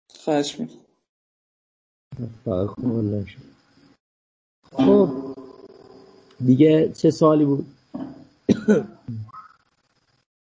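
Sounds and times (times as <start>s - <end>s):
speech: 0.1s - 0.9s, 2.2s - 3.5s, 4.7s - 5.3s, 6.4s - 8.1s, 8.7s - 9.2s
cough: 8.0s - 9.3s
throat clearing: 8.0s - 9.4s.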